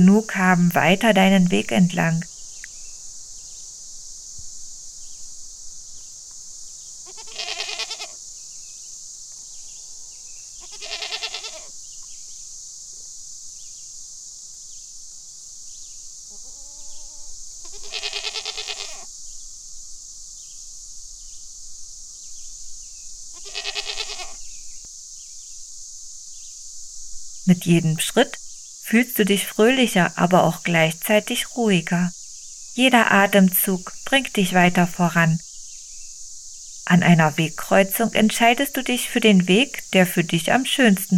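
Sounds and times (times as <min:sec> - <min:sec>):
speech: 0:00.0 - 0:02.3, 0:27.5 - 0:32.2, 0:32.8 - 0:35.5, 0:36.9 - 0:41.1
crickets or insects droning: 0:00.0 - 0:41.1
small and large goats bleating while being fed grass: 0:07.1 - 0:08.2, 0:10.6 - 0:11.7, 0:17.6 - 0:19.1, 0:23.4 - 0:24.4.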